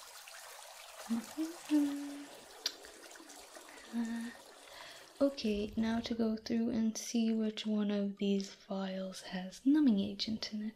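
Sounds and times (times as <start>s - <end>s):
lukewarm water pouring into a basin: 0.0s - 6.2s
speech: 1.1s - 2.1s, 3.9s - 4.4s, 5.2s - 10.7s
voice humming: 1.1s - 2.4s.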